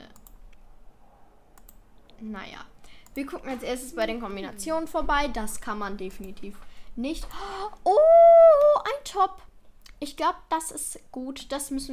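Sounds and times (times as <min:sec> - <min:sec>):
computer mouse clicks: 0:00.0 - 0:00.6, 0:01.6 - 0:02.2, 0:02.9 - 0:03.3
faint steady hum: 0:00.0 - 0:11.9
speech: 0:02.2 - 0:07.8, 0:09.1 - 0:11.9.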